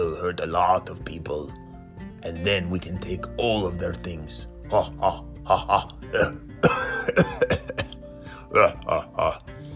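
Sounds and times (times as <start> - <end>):
speech: 0.2 - 1.6, 2.2 - 7.5, 8.6 - 9.5
person coughing: 4.8 - 9.4.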